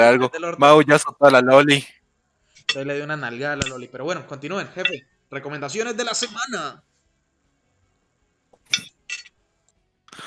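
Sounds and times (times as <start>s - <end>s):
speech: 0.0s - 2.0s, 2.7s - 6.9s
metal cutlery clinking against a plate or dish: 8.6s - 9.3s.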